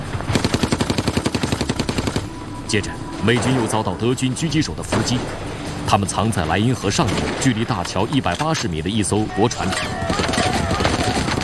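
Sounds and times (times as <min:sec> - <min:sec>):
machine gun firing from a tower across the river: 0:00.0 - 0:02.4, 0:09.6 - 0:11.4
speech: 0:02.7 - 0:10.3.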